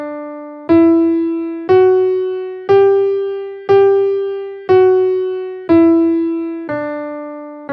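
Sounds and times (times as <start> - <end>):
guitar playing a Lydian scale in G: 0.7 - 7.1.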